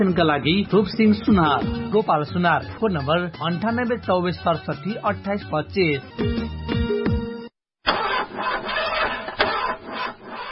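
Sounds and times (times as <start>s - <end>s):
speech: 0.0s - 6.6s
car engine cranking but failing to start because of a battery problem: 7.9s - 10.5s.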